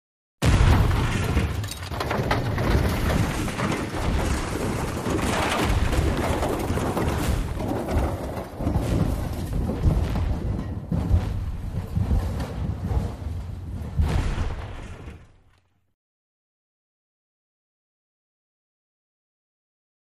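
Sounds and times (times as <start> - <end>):
car crashing and rolling down: 0.4 - 15.7.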